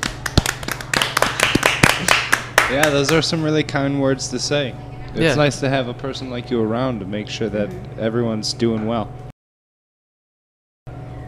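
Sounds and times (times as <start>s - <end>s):
small group applauding: 0.0s - 3.4s
speech: 2.7s - 9.2s.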